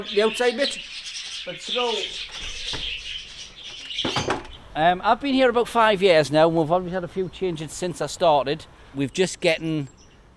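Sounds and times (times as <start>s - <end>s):
speech: 0.0s - 2.9s, 4.2s - 10.0s
talking bird squawking: 0.0s - 4.8s
talking bird chirping: 0.0s - 10.3s.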